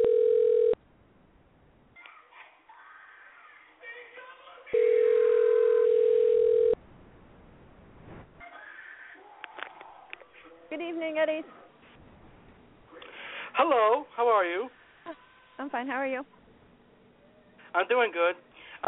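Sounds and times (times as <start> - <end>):
telephone ringback tone of an outgoing call to a store: 0.0 - 0.8, 4.8 - 6.8
speech: 11.1 - 11.6, 13.7 - 16.4, 17.8 - 18.8.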